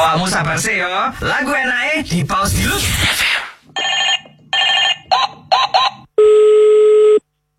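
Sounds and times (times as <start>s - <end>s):
speech: 0.1s - 4.1s
telephone ringing in loud electronic bursts: 3.8s - 7.2s.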